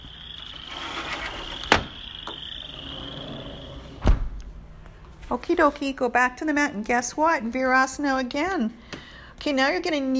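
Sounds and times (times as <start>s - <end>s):
chorus of frogs trilling and croaking: 0.0s - 4.1s
speech: 5.3s - 8.8s, 9.4s - 10.1s.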